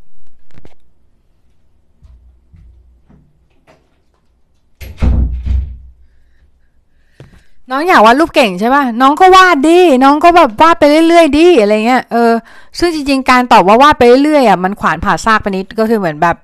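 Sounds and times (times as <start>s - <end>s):
shuffling: 0.5s - 4.8s
soft knocks: 2.0s - 6.0s
door swinging shut with a loud rattling thud: 4.8s - 6.0s
speech: 7.7s - 16.4s.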